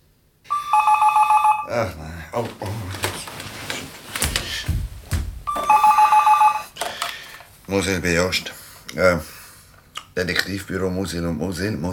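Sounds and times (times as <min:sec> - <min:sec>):
telephone ringing with a transferred call: 0:00.5 - 0:01.7, 0:05.5 - 0:06.8
speech: 0:01.7 - 0:03.1, 0:07.7 - 0:09.4, 0:10.2 - 0:11.9
knocks and rustles: 0:02.4 - 0:05.8.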